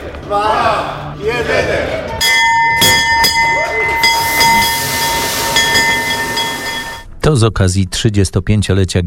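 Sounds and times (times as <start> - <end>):
speech: 0.3 - 2.3, 7.3 - 9.0
loud electric bell ringing: 2.2 - 7.1.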